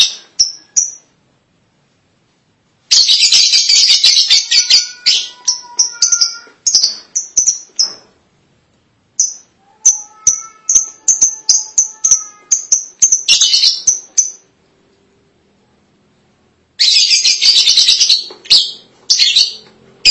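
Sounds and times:
lovebird squeaking, chattering and chirping: 0:02.9 - 0:08.1, 0:09.2 - 0:14.5, 0:16.8 - 0:20.0.

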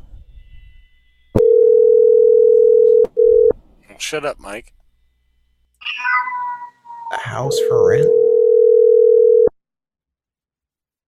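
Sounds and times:
telephone dial tone while dialing a number: 0:01.4 - 0:03.5, 0:07.5 - 0:09.5
speech: 0:04.0 - 0:04.8, 0:07.3 - 0:08.2.

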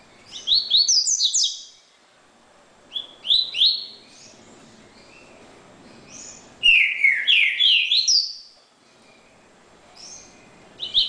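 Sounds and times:
double-collared seedeater singing: 0:00.3 - 0:01.8, 0:02.9 - 0:04.0, 0:06.0 - 0:09.3, 0:10.0 - 0:11.0.

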